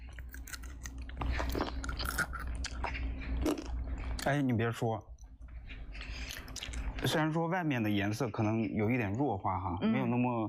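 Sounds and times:
biting and chewing cooked spinach during a tasting: 0.0s - 4.5s, 5.2s - 7.2s
speech: 4.2s - 5.1s, 7.1s - 10.4s.

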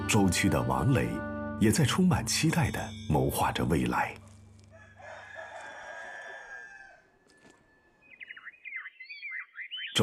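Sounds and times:
speech: 0.1s - 4.2s
rooster crowing under walnut trees: 4.7s - 7.6s
high quick bird chirps: 7.6s - 10.0s.

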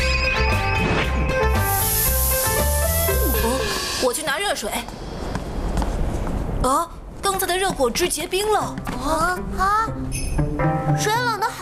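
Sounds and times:
light music: 0.0s - 4.9s, 7.3s - 11.6s
aerosol setting spray hissing: 1.5s - 5.7s
speech: 4.6s - 5.0s, 6.6s - 6.9s, 7.6s - 11.5s.

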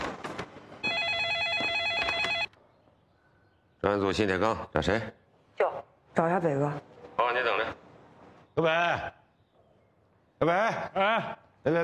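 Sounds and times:
telephone ringing with a rapid warbling electronic trill: 0.8s - 2.6s
speech: 3.8s - 7.8s, 8.6s - 9.2s, 10.4s - 11.8s.

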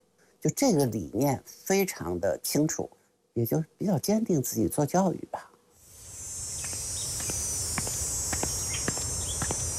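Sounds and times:
speech: 0.4s - 5.5s
cicadas droning in summer: 0.4s - 9.7s
footsteps tapping: 6.6s - 9.7s.

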